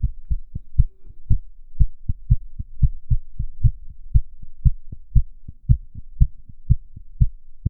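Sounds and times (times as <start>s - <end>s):
heartbeat: 0.0s - 7.6s.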